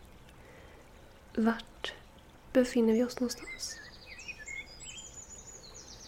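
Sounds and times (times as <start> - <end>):
speech: 1.4 - 1.7, 2.6 - 3.8
birds whistling and chirping outdoors: 3.4 - 6.0.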